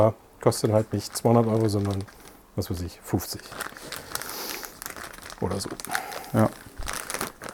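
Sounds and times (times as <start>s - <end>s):
speech: 0.0s - 4.0s, 5.4s - 6.7s
plastic bag crinkling as cable is packed: 0.7s - 7.5s.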